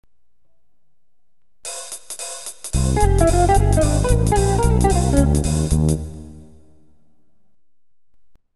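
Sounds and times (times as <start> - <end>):
jazz music: 2.7 - 6.6.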